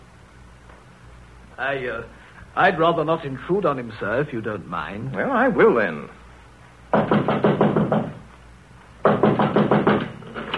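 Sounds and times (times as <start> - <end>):
speech: 1.6 - 6.2
rapid knocking on the locked wooden door of a study: 6.9 - 8.2, 9.0 - 10.2.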